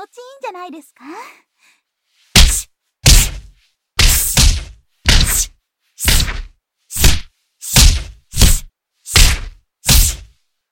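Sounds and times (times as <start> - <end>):
speech: 0.0 - 1.8
light punches landing on a person's face: 2.4 - 5.5, 6.1 - 10.3.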